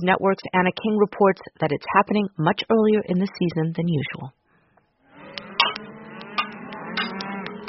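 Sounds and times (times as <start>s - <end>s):
speech: 0.0s - 4.4s
cattle herd lowing and mooing on a ranch in Harney County southeast Oregon: 5.1s - 7.6s
clicks: 5.3s - 7.6s.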